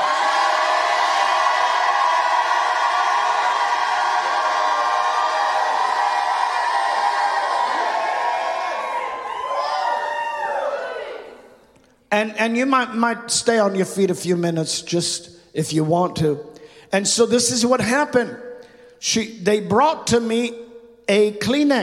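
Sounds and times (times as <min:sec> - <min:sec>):
scattered whoops and yells: 0:00.0 - 0:11.6
large audience at a religious service shouting and cheering: 0:00.0 - 0:11.8
speech: 0:12.3 - 0:21.8.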